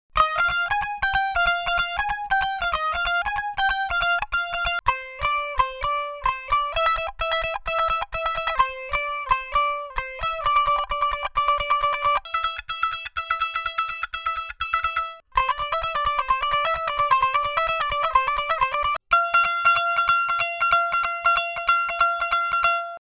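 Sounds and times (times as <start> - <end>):
tumbi loops: 0.2 - 23.0.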